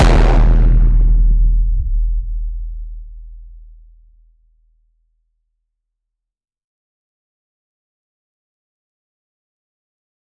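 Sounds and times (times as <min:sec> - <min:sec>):
vine boom sound effect with a strong bass: 0:00.0 - 0:04.2.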